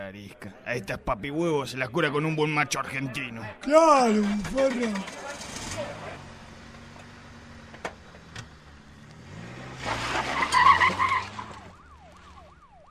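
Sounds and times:
speech: 0.1s - 5.9s
car engine accelerating hard: 4.2s - 12.8s
car tires skidding and squealing: 4.3s - 7.7s, 9.1s - 12.5s.

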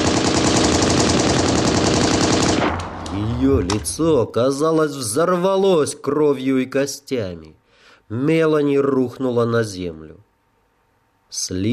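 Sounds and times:
automatic rifle firing a burst: 0.0s - 3.3s
speech: 3.5s - 10.3s, 11.3s - 11.7s.

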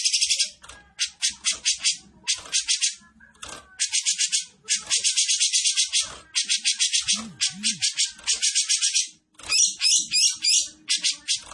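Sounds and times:
Grey-cheeked bulbul giving fast rasping rattles and buzzy high bursts: 0.2s - 11.5s.

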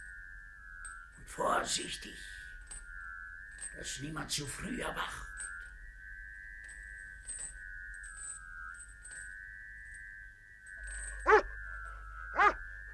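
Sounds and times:
high whistling tone: 0.0s - 12.9s
speech: 1.3s - 2.4s, 3.8s - 5.3s
dog barking: 12.4s - 12.6s.

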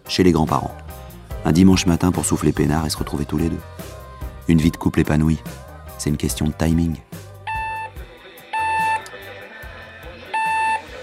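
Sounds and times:
speech: 0.1s - 0.8s, 1.4s - 7.1s
alarm clock beeping on a Sunday morning: 7.5s - 8.0s, 8.6s - 9.1s, 10.3s - 10.9s.

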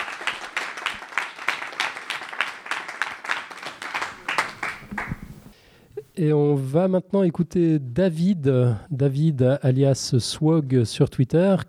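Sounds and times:
audience applauding in a hall: 0.0s - 5.5s
speech: 6.2s - 11.6s.

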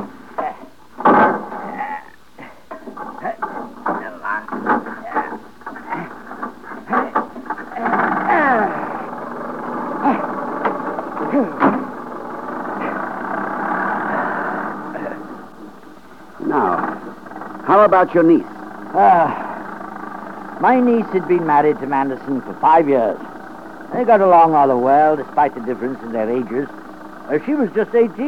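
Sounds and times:
vintage motor car engine cranked and running: 0.0s - 28.2s
speech: 17.9s - 19.4s, 20.6s - 23.3s, 23.9s - 28.2s.

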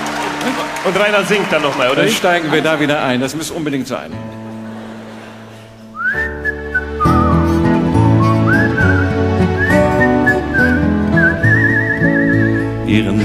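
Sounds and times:
laughter: 0.0s - 11.1s
speech: 0.5s - 4.4s
full instrumental backing music at a live concert: 4.0s - 13.2s
person whistling a clear high tune at a live concert: 5.9s - 12.8s.

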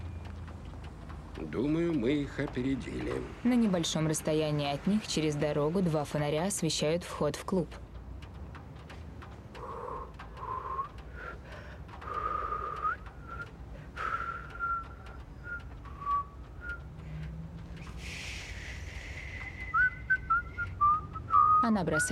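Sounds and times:
speech: 1.4s - 7.8s, 21.8s - 22.1s
people whistling: 10.4s - 11.4s, 12.0s - 17.2s, 17.8s - 22.1s.

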